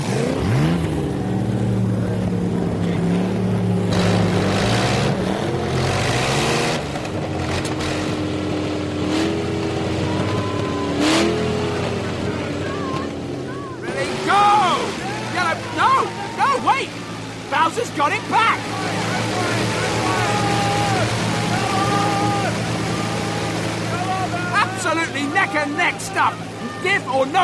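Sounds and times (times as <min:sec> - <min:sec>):
several engines revving under load during a power pull: 0:00.0 - 0:27.4
voices: 0:10.0 - 0:27.4.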